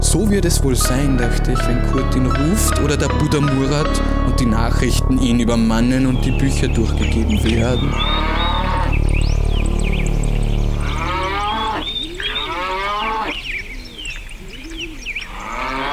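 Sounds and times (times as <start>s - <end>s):
speech: 0.1s - 8.8s
birds chirping and singing: 0.6s - 15.9s
cow mooing: 7.5s - 13.4s, 15.3s - 15.9s.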